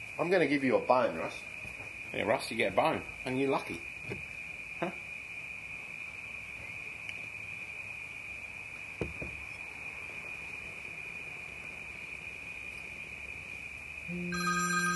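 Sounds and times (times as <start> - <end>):
speech: 0.2 - 5.0
telephone ringing with a shrill high tone: 14.3 - 14.9.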